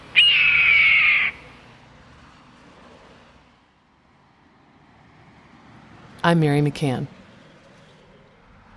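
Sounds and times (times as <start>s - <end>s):
red-tailed hawk scream: 0.1s - 1.5s
speech: 6.2s - 7.2s.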